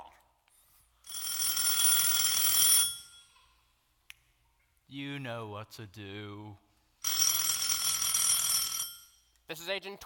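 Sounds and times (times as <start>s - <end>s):
telephone ringing with a metallic bell: 1.0s - 3.4s, 7.0s - 9.3s
speech: 4.9s - 6.7s, 9.5s - 10.0s.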